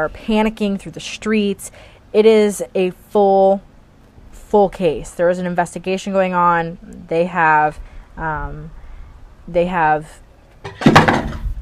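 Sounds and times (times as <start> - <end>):
speech: 0.0 - 3.7, 4.5 - 8.8, 9.5 - 11.2
water bottle knocked off a surface: 10.6 - 11.5.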